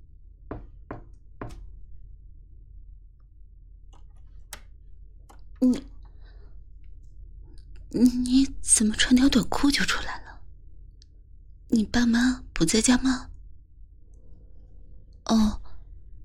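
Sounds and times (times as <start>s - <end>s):
sharp knocks on a door: 0.5s - 1.7s
speech: 5.6s - 5.9s, 7.9s - 10.2s, 11.8s - 13.3s, 15.3s - 15.6s.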